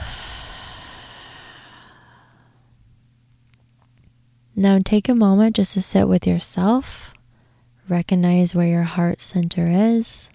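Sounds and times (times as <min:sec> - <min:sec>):
long breath in and out in a guided meditation: 0:00.0 - 0:02.6
speech: 0:04.6 - 0:07.2, 0:07.9 - 0:10.3.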